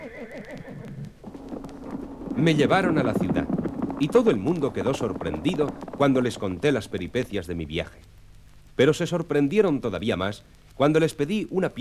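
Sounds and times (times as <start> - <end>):
horse neighing: 0.0 - 5.8
speech: 2.4 - 8.1, 8.8 - 11.7.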